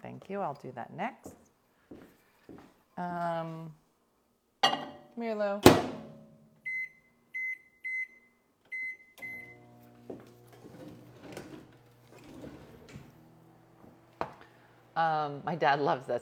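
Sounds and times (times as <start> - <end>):
speech: 0.2 - 2.0, 3.0 - 3.8, 5.2 - 6.0, 15.0 - 16.2
kitchen appliance beeping: 6.6 - 14.8.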